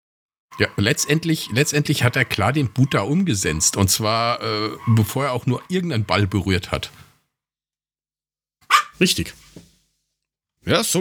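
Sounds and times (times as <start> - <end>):
single sharp dog bark: 0.6 - 5.7, 8.7 - 9.0
speech: 0.6 - 7.0, 9.0 - 9.4, 10.6 - 11.0.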